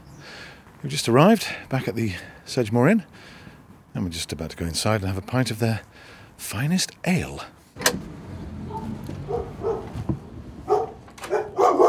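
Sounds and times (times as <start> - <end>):
speech: 0.8 - 3.4, 4.0 - 8.2
dogs barking: 8.6 - 10.0, 10.6 - 11.8.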